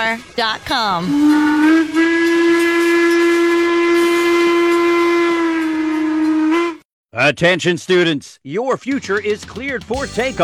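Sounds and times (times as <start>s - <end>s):
speech: 0.0s - 2.6s, 7.1s - 10.4s
steam train whistle blowing: 1.0s - 6.9s.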